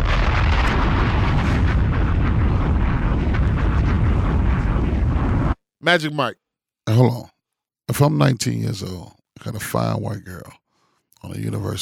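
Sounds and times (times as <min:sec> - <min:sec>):
bomb explosion sound effect: 0:00.0 - 0:05.6
speech: 0:05.8 - 0:07.3, 0:07.9 - 0:10.6, 0:11.2 - 0:11.8.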